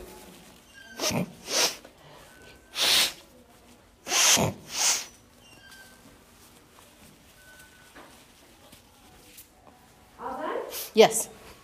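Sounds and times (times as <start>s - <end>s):
person blowing nose into a tissue before medical testing: 0.9s - 2.0s, 2.6s - 3.3s, 4.0s - 5.2s
speech: 1.1s - 1.4s, 11.0s - 11.4s.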